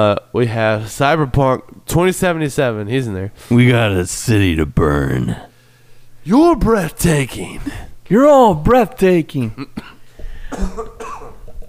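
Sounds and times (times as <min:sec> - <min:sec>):
speech: 0:00.0 - 0:05.5, 0:06.2 - 0:09.9, 0:10.5 - 0:11.0
raspy coughs: 0:09.6 - 0:11.5.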